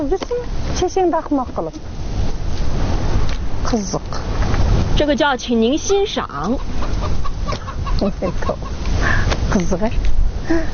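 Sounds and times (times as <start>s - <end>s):
speech: 0.0s - 2.1s, 3.6s - 4.4s, 5.0s - 6.9s, 8.0s - 10.7s
constant noisy background: 0.0s - 10.7s
chickens clucking on a television farm program: 5.9s - 9.5s.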